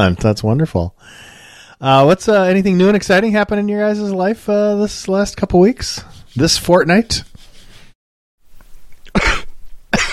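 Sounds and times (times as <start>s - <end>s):
speech: 0.0s - 7.3s
person coughing: 9.1s - 10.1s.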